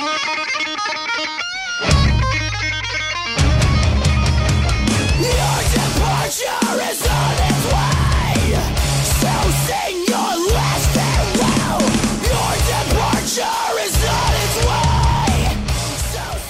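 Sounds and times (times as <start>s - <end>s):
driving distorted guitars in a rock song: 0.0s - 16.4s
heavy bass in a rock song: 1.9s - 2.8s, 3.4s - 16.4s
pounding drums in a rock song: 3.4s - 16.4s
harsh screamed vocals in a rock song: 5.1s - 16.4s.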